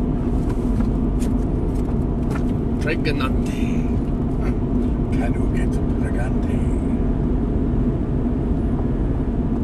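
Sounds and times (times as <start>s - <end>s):
Ford Escape car cabin rumble while driving: 0.0s - 9.6s
speech: 2.9s - 4.0s, 5.2s - 6.9s.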